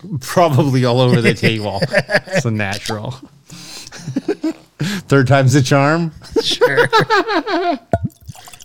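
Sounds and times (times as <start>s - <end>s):
speech: 0.0s - 3.6s, 4.3s - 8.0s
laughter: 1.0s - 2.5s, 6.4s - 7.9s
whisky glugging from a bottle into a glass: 7.9s - 8.6s.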